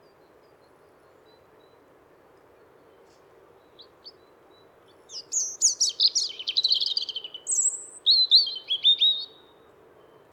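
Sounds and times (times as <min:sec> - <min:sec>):
European robin singing: 0:05.1 - 0:09.4.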